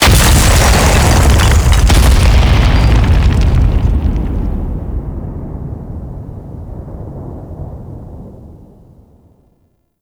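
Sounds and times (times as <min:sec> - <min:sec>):
pillar crashing: 0:00.0 - 0:05.2
explosion: 0:00.0 - 0:08.6.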